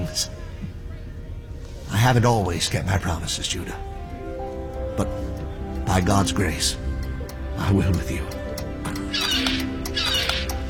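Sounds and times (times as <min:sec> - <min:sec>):
speech: 0:00.2 - 0:00.4, 0:02.0 - 0:03.9, 0:05.0 - 0:05.3, 0:05.9 - 0:06.8, 0:07.6 - 0:08.4
seagull cry from a small novelty pocket clock: 0:09.1 - 0:10.6.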